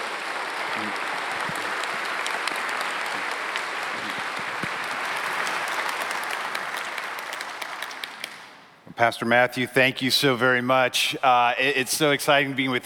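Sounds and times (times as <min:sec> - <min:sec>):
large audience applauding warmly for a guest speaker: 0:00.0 - 0:08.7
speech: 0:09.0 - 0:12.8.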